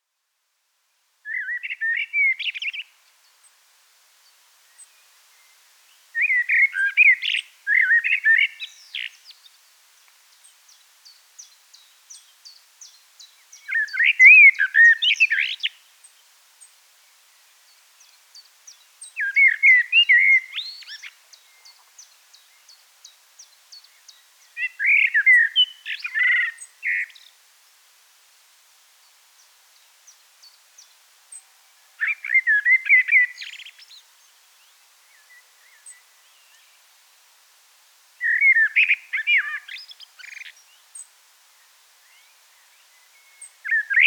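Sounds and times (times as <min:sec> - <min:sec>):
Turdus merula: 0:01.3 - 0:03.0, 0:04.7 - 0:09.6, 0:10.4 - 0:15.8, 0:18.0 - 0:27.4, 0:30.1 - 0:36.7, 0:38.2 - 0:41.1, 0:42.0 - 0:44.0.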